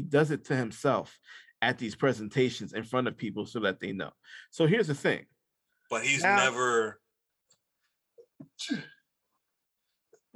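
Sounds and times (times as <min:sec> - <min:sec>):
speech: 0:00.1 - 0:05.3, 0:05.9 - 0:07.0, 0:08.4 - 0:09.0
sneeze: 0:08.6 - 0:09.0.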